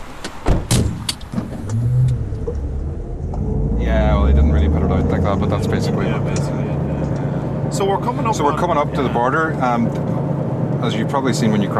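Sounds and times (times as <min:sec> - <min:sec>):
car engine hum: 0:00.0 - 0:11.7
sharp clicks and thumps: 0:00.2 - 0:03.6
speech: 0:05.2 - 0:06.6, 0:07.7 - 0:10.2, 0:10.8 - 0:11.7.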